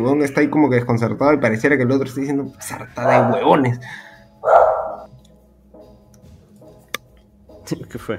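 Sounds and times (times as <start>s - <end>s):
speech: 0.0s - 4.7s, 7.7s - 8.1s
small dog barking: 3.0s - 3.6s, 4.4s - 5.1s.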